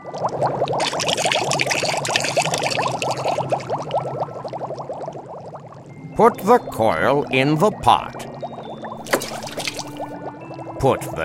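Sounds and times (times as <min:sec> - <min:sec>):
water pouring into a container: 0:00.0 - 0:05.4, 0:07.8 - 0:11.2
speech: 0:06.2 - 0:08.2, 0:10.8 - 0:11.2.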